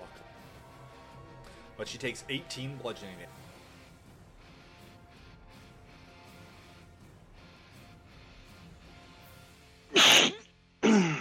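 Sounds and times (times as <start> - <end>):
speech: 1.8 - 3.6
person sneezing: 9.9 - 11.2.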